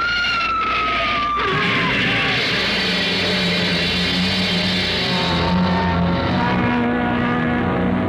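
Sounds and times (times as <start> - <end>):
car tires screeching as the car skids: 0.0 - 8.0
engine rumble and rattling: 0.0 - 8.0
car crashing into the back of a hearse: 0.6 - 6.8.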